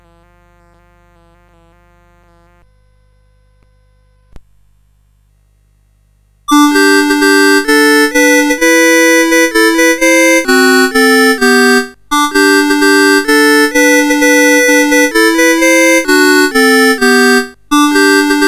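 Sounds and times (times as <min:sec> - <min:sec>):
Christmas carol played on a CSG8580 sound chip: 0:06.5 - 0:18.4.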